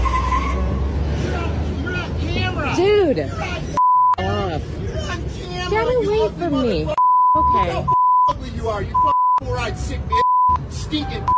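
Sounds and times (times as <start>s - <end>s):
high-pitched truck tire squeal: 0.0s - 3.8s
truck engine rumbling as it drives off: 0.0s - 11.3s
speech: 3.1s - 3.6s, 5.7s - 11.3s.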